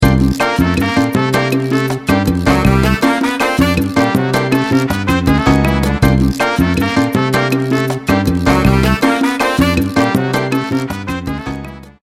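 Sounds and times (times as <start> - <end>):
cha cha rhythm on an MC-909 groovebox: 0.0 - 12.0.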